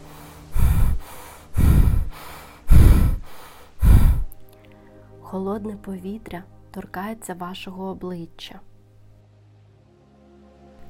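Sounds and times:
fast deep heavy breathing: 0.0 - 5.2
speech: 5.3 - 8.7.

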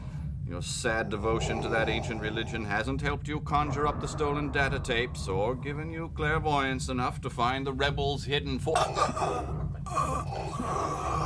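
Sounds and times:
speech: 0.5 - 11.2
strained rasping choking gasp of someone struggling for breath: 8.8 - 11.2.

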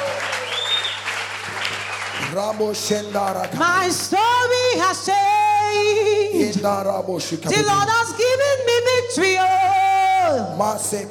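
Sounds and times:
audience applauding in celebration: 0.0 - 4.5
speech: 2.3 - 11.0.

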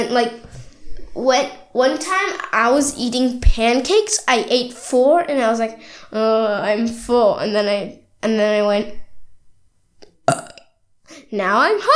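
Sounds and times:
speech: 0.0 - 0.6, 1.2 - 9.0, 11.1 - 11.9
faint breath: 5.8 - 6.1
deliberate fake burp by a voice: 10.3 - 10.8.

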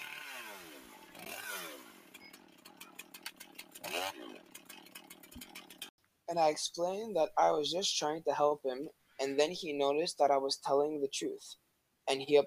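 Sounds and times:
chainsaw engine revving: 0.0 - 5.9
speech: 6.3 - 12.4.

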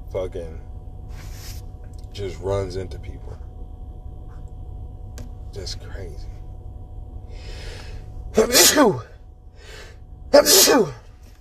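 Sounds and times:
low steady hum: 0.0 - 11.3
speech: 0.1 - 1.3, 2.2 - 3.5, 5.5 - 6.4, 8.4 - 9.1, 9.7 - 11.0
soft breathy inhale: 7.3 - 8.1, 9.5 - 10.0
person sneezing: 8.4 - 9.0, 10.4 - 11.0.

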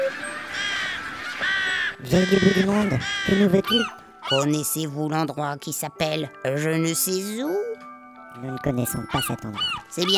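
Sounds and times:
crowd of crows cawing: 0.0 - 4.6, 9.1 - 10.1
speech: 2.0 - 10.1.

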